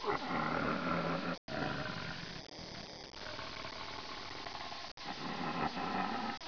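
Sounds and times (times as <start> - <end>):
tiger: 0.0 - 2.5, 3.2 - 6.4.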